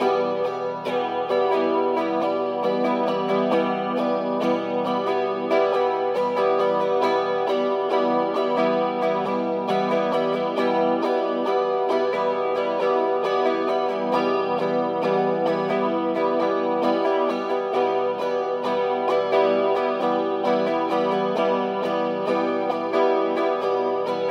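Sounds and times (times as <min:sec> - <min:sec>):
guitar strumming in E minor: 0:00.0 - 0:24.2.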